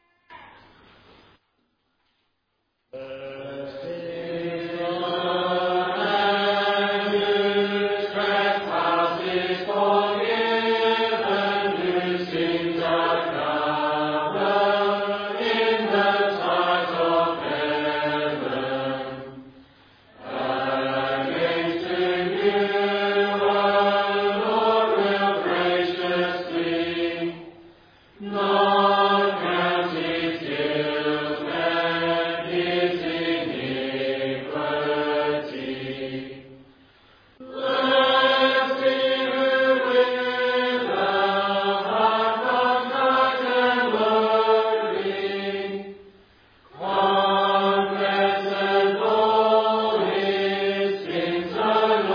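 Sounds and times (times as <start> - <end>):
audience singing a psalm together: 3.0 - 19.6, 20.2 - 27.6, 28.2 - 36.6, 37.4 - 52.1.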